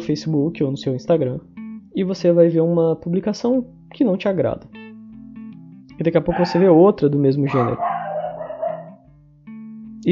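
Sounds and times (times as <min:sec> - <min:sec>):
speech: 0:00.0 - 0:04.8, 0:06.0 - 0:07.9
female dog barking and whining at home: 0:06.3 - 0:09.0.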